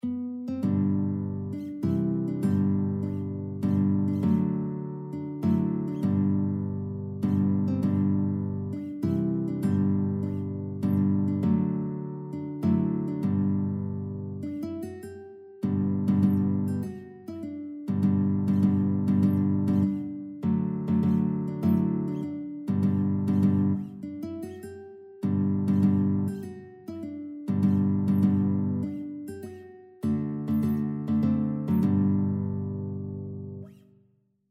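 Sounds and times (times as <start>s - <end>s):
guitar: 0.0s - 34.0s.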